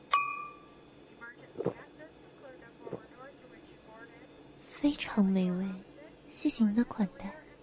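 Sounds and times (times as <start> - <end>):
low hum: 0.0 - 7.6
glasses clinking in a toast: 0.1 - 0.7
speech: 4.8 - 7.4.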